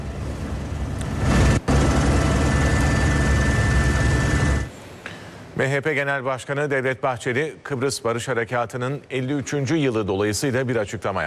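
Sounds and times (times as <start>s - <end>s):
firefighting helicopters and planes roaring over a forest wildfire: 0.0s - 4.7s
speech: 5.6s - 11.2s.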